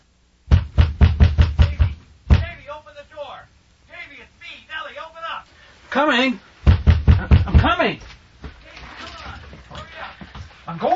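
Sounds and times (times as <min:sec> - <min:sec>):
heavy loud knocking on a door: 0:00.5 - 0:02.7, 0:06.6 - 0:07.8
speech: 0:03.3 - 0:06.5, 0:07.2 - 0:08.1, 0:10.7 - 0:10.9.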